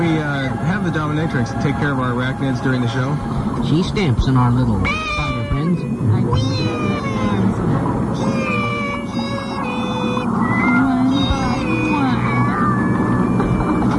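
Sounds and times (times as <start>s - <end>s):
speech: 0.0s - 5.1s
chorus of cats meowing and caterwauling: 4.8s - 13.9s.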